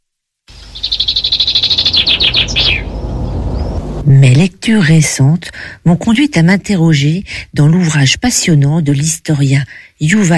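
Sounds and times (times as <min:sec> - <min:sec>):
European robin singing: 0:00.5 - 0:04.1
low rumble: 0:00.6 - 0:07.3
speech: 0:04.4 - 0:10.3.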